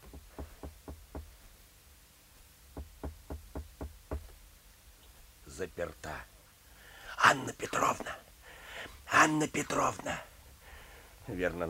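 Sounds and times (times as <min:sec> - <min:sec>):
knocking on a door: 0:00.0 - 0:01.3, 0:02.8 - 0:04.3
speech: 0:05.6 - 0:06.3, 0:07.2 - 0:08.2, 0:09.2 - 0:10.3, 0:11.3 - 0:11.6.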